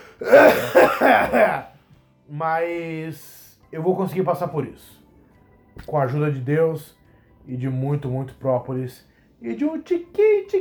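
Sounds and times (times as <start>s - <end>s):
person coughing: 0.0s - 1.7s
throat clearing: 0.0s - 1.7s
speech: 0.2s - 1.7s, 2.3s - 5.0s, 5.8s - 10.6s.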